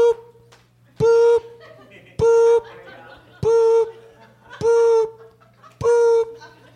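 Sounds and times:
voice imitating truck reversing beeps: 0.0 - 0.3, 1.0 - 1.6, 2.2 - 2.8, 3.4 - 5.2, 5.8 - 6.5
laughter: 0.9 - 6.7.

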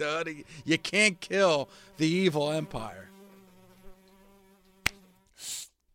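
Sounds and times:
speech: 0.0 - 3.1
housefly buzzing: 0.0 - 5.8
sharp snap: 4.8 - 5.7
hissing noise: 5.4 - 5.8.

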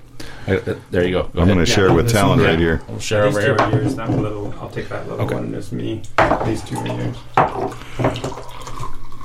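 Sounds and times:
speech: 0.4 - 8.4
hazy IPA beer pouring from a can into a glass: 6.2 - 9.2.

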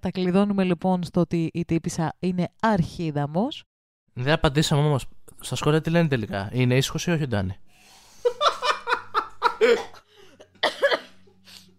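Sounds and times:
speech: 0.0 - 8.4, 9.6 - 10.0
laughter: 8.3 - 9.8
person coughing and spluttering: 9.5 - 11.2.

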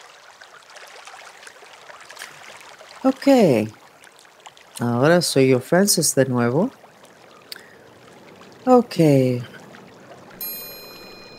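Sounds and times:
soft steady flowing water: 0.0 - 11.3
speech: 3.0 - 3.8, 4.8 - 6.8, 8.7 - 9.5
high sustained tone: 10.4 - 11.3.

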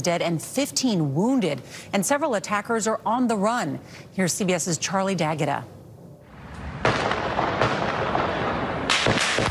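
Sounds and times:
speech: 0.0 - 5.8
heavy gunfire echoing off buildings on city streets during a terror attack: 6.6 - 9.4.

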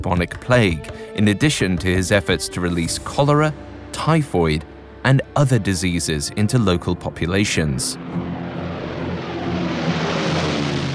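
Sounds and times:
speech: 0.0 - 8.4
propeller airplane droning overhead: 3.2 - 10.9.

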